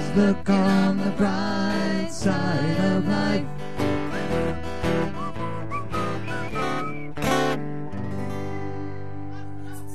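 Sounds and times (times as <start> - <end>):
speech: 0.1 - 3.5
people whistling a bouncy tune: 3.8 - 9.9.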